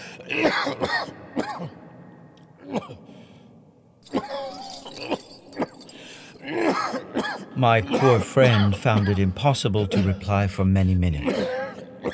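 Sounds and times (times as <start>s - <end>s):
harsh coughing in a cavern with nitrate-covered walls: 0.0s - 1.8s, 2.6s - 3.1s, 4.0s - 5.8s, 6.4s - 10.3s, 11.2s - 12.1s
speech: 0.2s - 1.8s, 7.6s - 11.6s.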